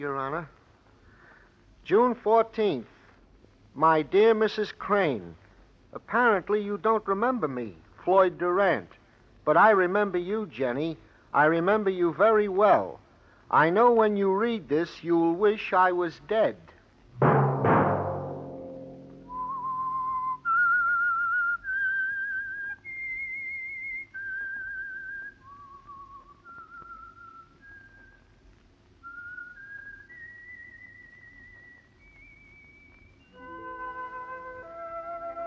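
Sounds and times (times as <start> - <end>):
speech: 0.0 - 0.6, 1.8 - 2.9, 3.8 - 17.5
deep orchestral chord: 17.2 - 19.6
soft instruments playing: 17.2 - 20.1, 33.4 - 35.4
solitary whistled theme melody: 19.2 - 28.2, 29.1 - 35.4.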